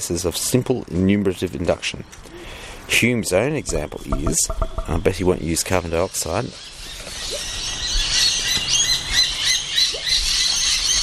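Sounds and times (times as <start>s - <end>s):
speech: 0.0s - 7.5s
wild birds chirping and tweeting: 2.1s - 11.0s
wood pigeons calling: 2.2s - 11.0s.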